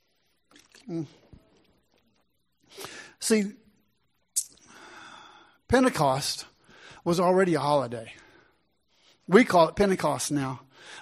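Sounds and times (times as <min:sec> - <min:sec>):
person sipping water: 0:00.5 - 0:02.0
speech: 0:00.8 - 0:01.2, 0:03.3 - 0:03.6, 0:05.7 - 0:08.2, 0:09.3 - 0:11.0.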